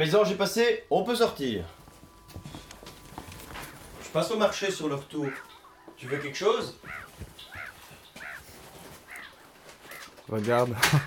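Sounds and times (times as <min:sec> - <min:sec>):
speech: 0:00.0 - 0:01.8, 0:04.1 - 0:07.0, 0:10.3 - 0:11.0
seagulls squawking: 0:02.4 - 0:10.3.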